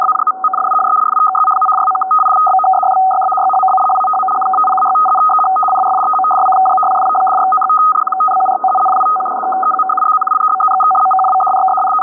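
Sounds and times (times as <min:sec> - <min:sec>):
500 Hz tone: 0:00.0 - 0:12.0.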